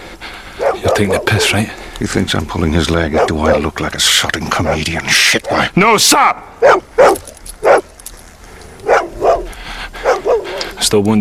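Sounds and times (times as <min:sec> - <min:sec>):
dog barking: 0:00.6 - 0:01.6, 0:03.1 - 0:03.6, 0:06.6 - 0:07.9, 0:08.8 - 0:10.8
speech: 0:00.9 - 0:07.2, 0:10.8 - 0:11.1.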